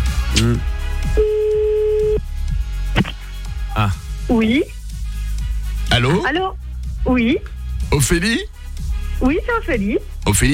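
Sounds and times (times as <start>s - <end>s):
busy music-like background: 0.0s - 10.5s
speech: 0.4s - 1.4s, 3.8s - 4.7s, 6.0s - 8.6s, 9.2s - 10.5s
steady telephone tone beep: 1.2s - 2.2s.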